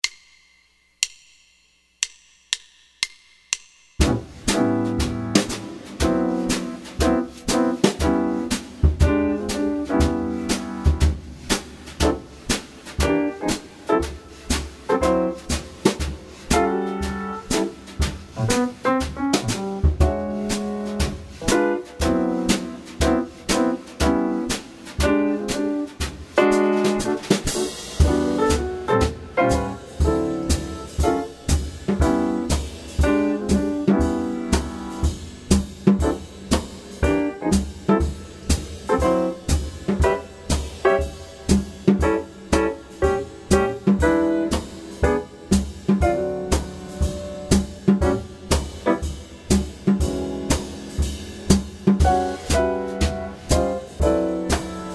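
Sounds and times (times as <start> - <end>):
blues bass backing track: 4.0 - 54.9.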